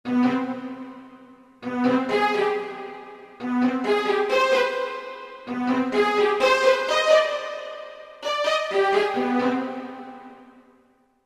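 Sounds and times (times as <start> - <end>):
synthesized arco strings: 0.1 - 10.6.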